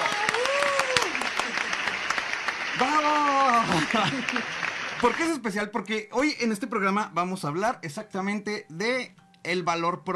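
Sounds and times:
person whooping: 0.0s - 1.5s
audience applause: 0.0s - 5.4s
speech: 3.9s - 10.1s.

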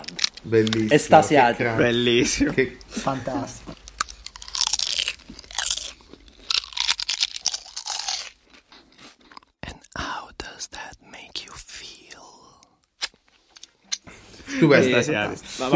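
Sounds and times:
crunching of something crisp being chewed: 0.0s - 0.9s, 3.7s - 10.0s
speech: 0.4s - 3.8s, 14.6s - 15.7s
whispered breaths: 9.6s - 12.8s.

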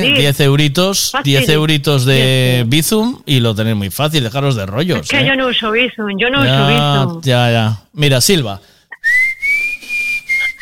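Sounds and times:
speech: 0.0s - 8.7s
person whistling a long high-pitched note: 8.9s - 10.5s.

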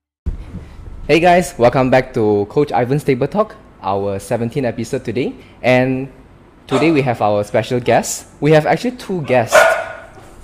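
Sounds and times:
speech: 1.1s - 9.7s
little new puppy barking at home: 6.7s - 7.1s, 9.3s - 10.3s.

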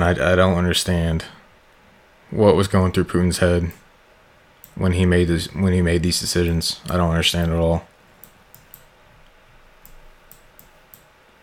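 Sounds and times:
speech: 0.0s - 1.4s, 2.3s - 3.8s, 4.8s - 7.9s
low hum: 0.0s - 11.4s
computer mouse clicking with a laptop: 8.2s - 8.9s, 9.8s - 11.1s.

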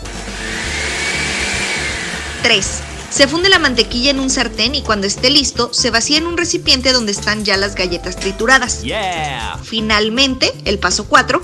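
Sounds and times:
blender mixing milk mixture at high speed: 0.0s - 4.8s
speech: 2.4s - 11.4s.

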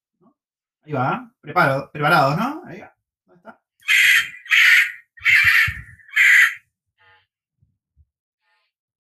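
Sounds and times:
speech: 0.8s - 4.0s
kakapo parrot harsh squawking calls: 3.8s - 6.6s.

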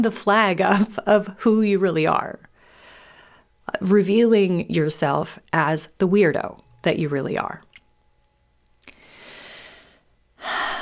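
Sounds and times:
speech: 0.0s - 2.5s, 3.7s - 7.7s
deep breath: 2.5s - 3.6s, 8.9s - 10.7s.

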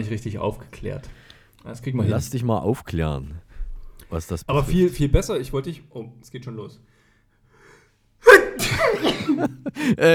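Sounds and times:
speech: 0.0s - 3.4s, 4.1s - 6.9s, 8.2s - 10.1s
hesitant spoken sounds: 0.0s - 6.9s
sneeze: 8.2s - 9.4s
laughter: 8.6s - 10.1s.

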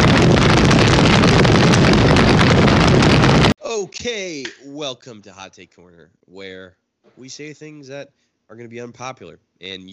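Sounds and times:
roaring fire sound effect with crackles: 0.0s - 3.6s
speech: 4.0s - 9.9s.

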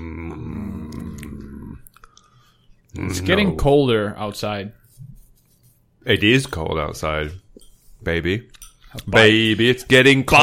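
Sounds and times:
low grumpy growling voice: 0.0s - 1.9s
speech: 3.0s - 4.8s, 6.0s - 7.4s, 8.0s - 10.4s.

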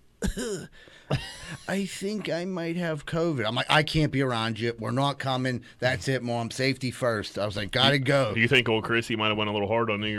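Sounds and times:
person imitating a cough on a phone call: 0.2s - 1.3s
speech: 0.4s - 10.1s.

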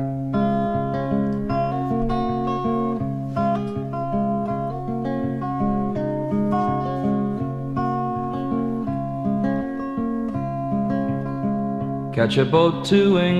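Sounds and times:
song with full band arrangement played from a record: 0.0s - 13.3s
speech: 12.2s - 13.3s.

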